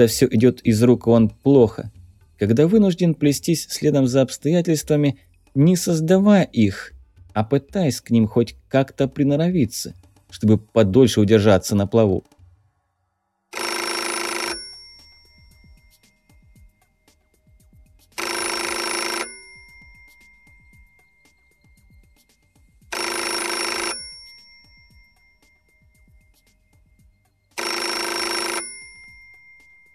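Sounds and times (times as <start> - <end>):
speech: 0.0 - 12.4
old telephone bell ringing insistently: 13.5 - 17.5, 18.2 - 22.0, 22.8 - 29.9.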